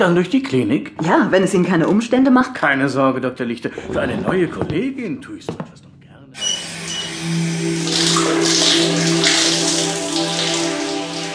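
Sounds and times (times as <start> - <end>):
speech: 0.0 - 6.5
ice-cold shower water spraying over a person's head: 6.4 - 11.3.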